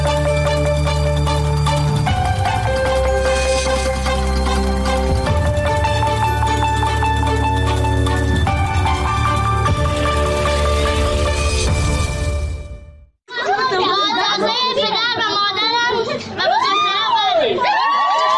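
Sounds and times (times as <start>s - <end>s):
loud festive music: 0.0s - 13.1s
children's voices and whoops: 13.3s - 18.3s
wedding celebration crowd cheering and shouting: 13.3s - 18.3s.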